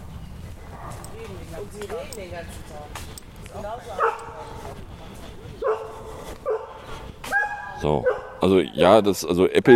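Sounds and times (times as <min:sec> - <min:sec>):
dog barking: 0:00.8 - 0:01.2, 0:04.0 - 0:04.6, 0:05.6 - 0:08.4
speech: 0:01.6 - 0:04.9, 0:07.8 - 0:09.7.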